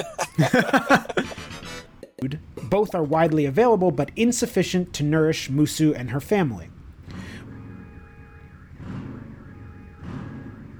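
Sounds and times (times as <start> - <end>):
speech: 0.0 - 1.3, 2.2 - 6.7
laughter: 0.0 - 1.5
car alarm blaring outside: 7.1 - 10.7.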